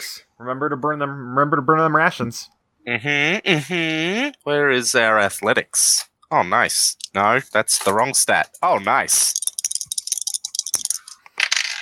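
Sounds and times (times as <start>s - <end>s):
speech: 0.0s - 9.4s
dice clattering and rattling across a hard surface: 6.8s - 11.8s
dice knock: 9.2s - 11.8s.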